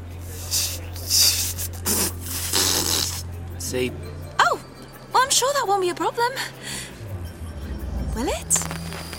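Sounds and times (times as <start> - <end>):
breathy blowing puffs from failed whistle attempt: 0.3 - 3.2
speech: 3.7 - 4.2, 5.2 - 6.6, 8.2 - 8.8.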